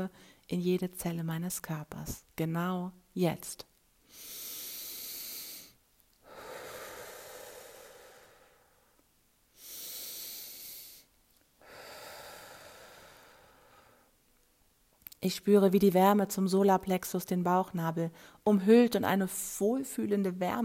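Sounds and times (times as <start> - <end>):
speech: 0.0 - 4.3, 15.2 - 20.6
deep breaths during a guided meditation: 0.1 - 0.5, 4.0 - 14.2, 18.1 - 18.4.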